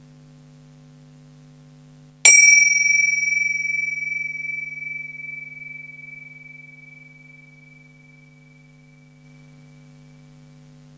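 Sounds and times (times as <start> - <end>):
small bell struck to open a seated meditation exercise: 2.3 - 7.7
faint low hum: 2.3 - 10.9.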